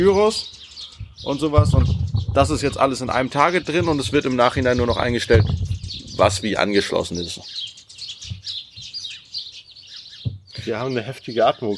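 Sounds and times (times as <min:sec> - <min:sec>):
speech: 0:00.0 - 0:00.6, 0:01.2 - 0:07.7, 0:10.7 - 0:11.7
many birds chirping and tweeting outdoors on a terrace on a summer day: 0:00.0 - 0:11.7
soft low thumps: 0:01.0 - 0:06.7, 0:10.2 - 0:10.7.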